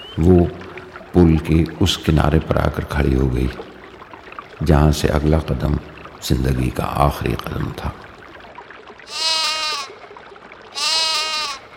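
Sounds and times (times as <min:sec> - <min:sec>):
speech: 0:00.2 - 0:00.6, 0:01.2 - 0:03.7, 0:04.6 - 0:08.1
lamb bleating: 0:09.1 - 0:09.9, 0:10.8 - 0:11.6.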